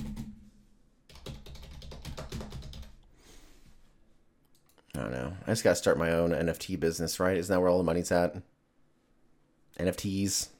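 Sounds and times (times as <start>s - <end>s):
rapid keystrokes on a computer keyboard: 1.1s - 3.0s
speech: 5.0s - 8.6s, 9.8s - 10.5s.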